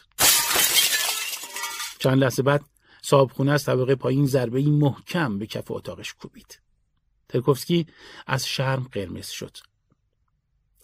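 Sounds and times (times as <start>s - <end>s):
drinking glass hitting the floor and shattering: 0.0s - 2.0s
tinkling shards of a drinking glass: 0.2s - 2.0s
speech: 2.0s - 6.6s, 7.3s - 9.7s.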